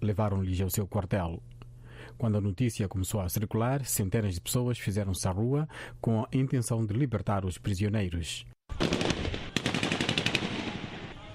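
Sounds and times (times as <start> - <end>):
speech: 0.0 - 9.0
rapid gunfire bursts fired to disperse a crowd in the street: 8.7 - 11.3.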